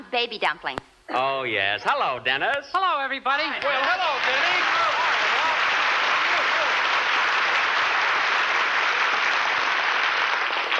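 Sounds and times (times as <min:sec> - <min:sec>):
speech: 0:00.1 - 0:05.2
large audience applauding: 0:03.6 - 0:10.7.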